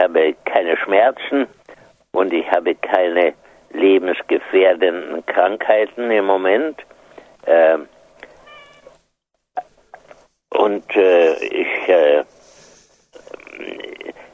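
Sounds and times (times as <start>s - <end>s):
speech: 0.0s - 7.9s, 10.5s - 12.3s, 13.2s - 14.2s
faint rustling: 6.9s - 14.3s
domestic cat meowing loudly while being petted: 8.3s - 9.0s.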